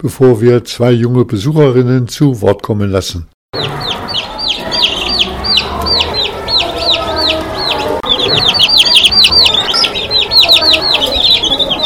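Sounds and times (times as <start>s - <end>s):
speech: 0.0s - 3.6s
crowd of chicks peeping: 3.6s - 11.8s
low murmur of noise: 3.6s - 11.8s.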